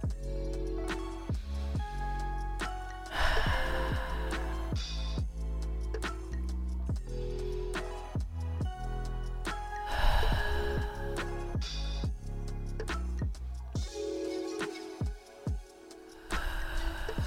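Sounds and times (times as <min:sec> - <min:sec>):
soft steady music: 0:00.0 - 0:17.2
slow deep breaths during a relaxation exercise: 0:03.1 - 0:05.2, 0:09.8 - 0:11.9, 0:16.2 - 0:17.2.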